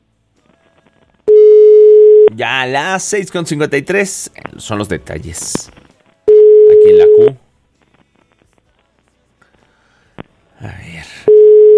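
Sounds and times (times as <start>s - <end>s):
single-pitch telephone line tone while a call is dialed: 1.3s - 2.3s, 6.3s - 7.4s, 11.3s - 11.7s
speech: 2.3s - 5.8s, 7.2s - 7.4s.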